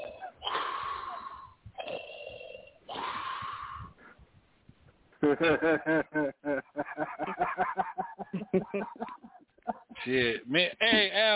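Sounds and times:
person imitating heavy raspy wheezing breaths: 0.0s - 4.3s
choppy bursts of voiced laughter: 5.2s - 11.2s
speech: 5.3s - 7.9s, 8.5s - 9.2s.

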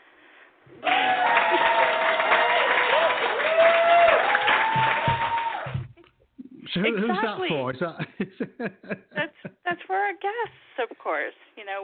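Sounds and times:
crowd clapping in applause: 0.8s - 6.0s
laughter: 6.8s - 9.8s
speech: 6.8s - 11.8s.

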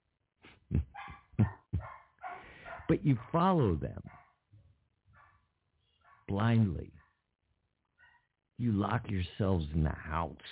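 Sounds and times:
dog barking: 0.9s - 3.4s, 4.0s - 4.4s, 5.1s - 6.3s, 8.0s - 8.3s
speech: 2.9s - 4.2s, 6.4s - 7.0s, 8.6s - 10.5s.

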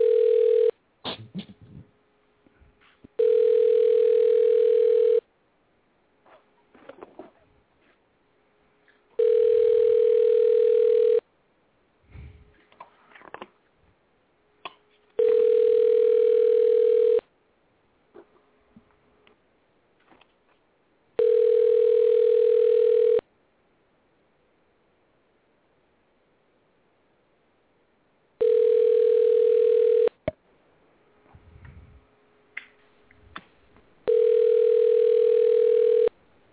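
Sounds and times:
telephone line tone while placing a call: 0.0s - 0.8s, 3.2s - 5.2s, 9.2s - 11.2s, 15.2s - 17.2s, 21.2s - 23.2s, 28.4s - 30.2s, 34.1s - 36.2s.

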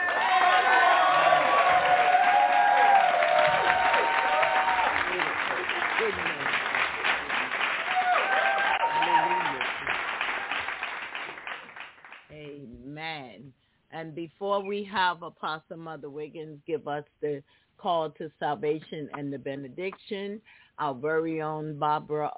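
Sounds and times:
people cheering: 0.0s - 11.7s
church audience clapping: 0.0s - 12.3s
speech: 14.3s - 22.3s.

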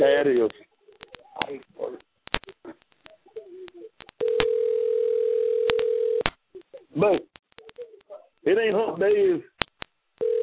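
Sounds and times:
sounds: 0.0s - 4.6s, 6.3s - 9.9s
speech: 0.2s - 0.7s, 7.0s - 7.3s
telephone dial tone: 4.2s - 6.2s, 10.2s - 10.4s.

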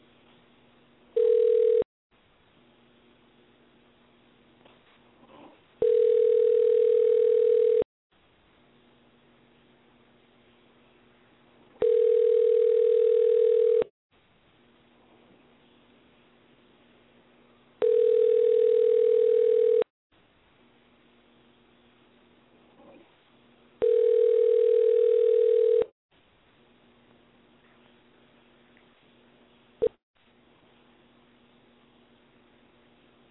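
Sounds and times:
telephone line tone after dialing a call: 1.2s - 1.8s, 5.8s - 7.8s, 11.8s - 13.9s, 17.8s - 19.9s, 23.8s - 25.9s.

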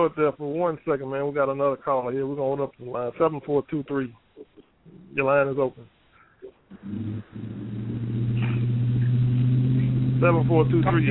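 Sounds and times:
speech: 0.0s - 4.5s, 5.2s - 5.9s, 6.8s - 7.8s, 10.2s - 11.0s
truck engine revving over a phone line: 6.7s - 11.0s.

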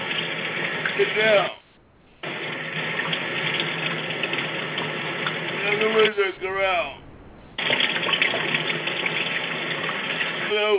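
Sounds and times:
tap water running at a sink as someone washes hands, over a telephone line: 0.0s - 10.7s
speech: 1.0s - 1.6s, 5.8s - 7.0s, 10.5s - 10.7s.

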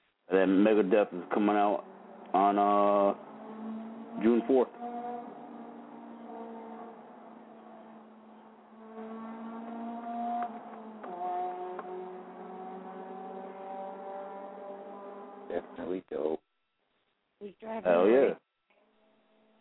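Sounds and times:
speech: 0.3s - 3.3s, 4.2s - 4.8s, 15.8s - 16.4s, 17.4s - 18.4s
motorcycle engine revving past: 0.7s - 15.9s.

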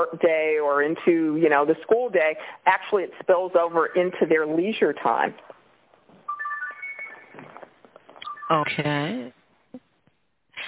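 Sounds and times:
speech: 0.0s - 5.6s, 8.5s - 9.4s
mobile phone ringtone: 6.3s - 8.8s.

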